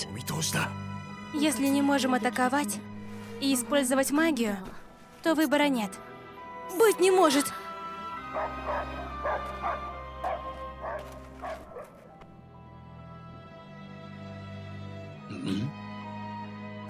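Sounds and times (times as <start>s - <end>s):
speech: 0.0s - 6.1s, 6.7s - 7.6s
dog barking sharp yappy barks: 8.3s - 12.0s.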